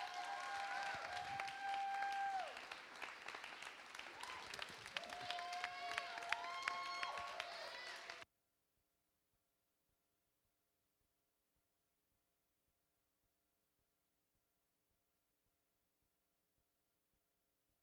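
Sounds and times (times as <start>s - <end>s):
whoops and cheers: 0.0s - 2.8s, 3.9s - 8.2s
crowd clapping: 0.0s - 8.2s.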